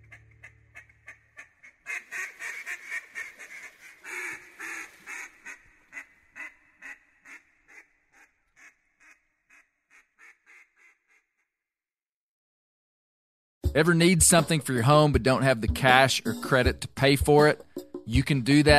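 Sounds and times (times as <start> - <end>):
mallard duck quacking: 0.0 - 11.3
speech: 13.8 - 18.7.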